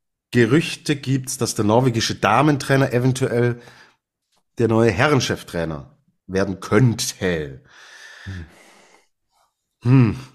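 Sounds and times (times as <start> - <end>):
speech: 0.3 - 3.8, 4.6 - 8.6, 9.8 - 10.3
soft breathy rush: 7.7 - 9.1.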